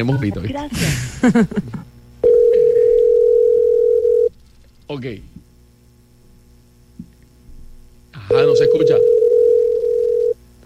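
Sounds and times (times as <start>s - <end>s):
speech: 0.0s - 1.9s, 4.9s - 5.3s, 8.4s - 9.2s
telephone dial tone: 2.2s - 4.3s, 8.7s - 10.4s.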